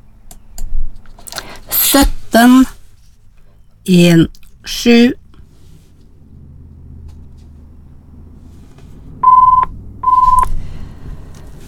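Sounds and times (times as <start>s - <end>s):
speech: 2.0s - 2.7s, 3.9s - 5.2s
telephone dialing tones as a number is keyed in: 9.2s - 10.5s.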